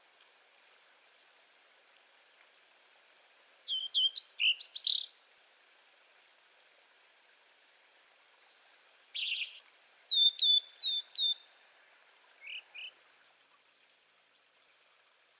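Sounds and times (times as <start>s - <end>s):
Blue-and-white flycatcher Cyanoptila cyanomelana song: 3.7s - 5.1s, 9.2s - 11.7s.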